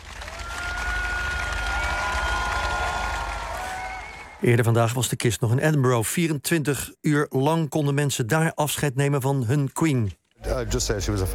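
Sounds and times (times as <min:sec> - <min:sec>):
crowd applauding as a queen's coffin arrives at a palace in London: 0:00.0 - 0:04.4
speech: 0:04.4 - 0:11.3.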